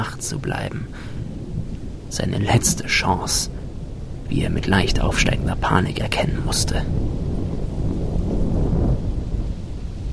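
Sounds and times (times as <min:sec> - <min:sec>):
speech: 0:00.0 - 0:01.2, 0:02.1 - 0:03.6, 0:04.3 - 0:07.2
faint hiss of rain or wind: 0:00.0 - 0:10.1
steady low dense deep rumbling: 0:00.0 - 0:10.1.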